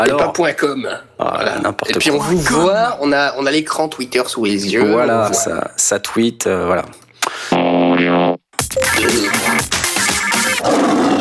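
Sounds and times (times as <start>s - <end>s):
speech: 0.0s - 9.8s
music and effects in a produced jingle: 8.6s - 10.6s
loud lion roar with rich harmonic growl: 10.6s - 11.2s.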